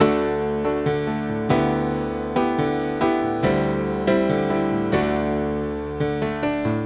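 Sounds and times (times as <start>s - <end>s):
classic rock piano playing: 0.0s - 6.8s.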